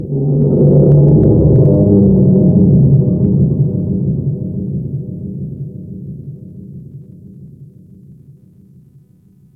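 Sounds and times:
large ocean underwater creatures: 0:00.0 - 0:06.1.

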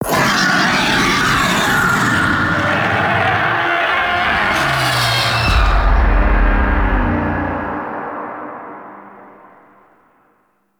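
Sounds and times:
death growl vocals: 0:00.0 - 0:08.1.

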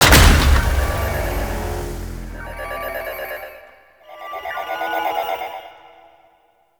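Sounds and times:
orbital station console deploying: 0:00.0 - 0:03.4.

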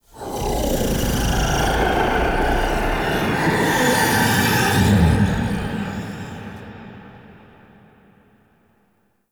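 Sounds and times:
large whispers ambience: 0:00.0 - 0:07.3.

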